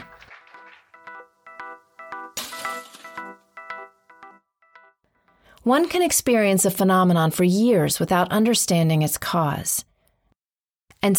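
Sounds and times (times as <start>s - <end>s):
steady repeating chime-like melody: 1.0s - 5.3s
sliding glass door shattering: 2.3s - 3.5s
speech: 5.6s - 9.9s.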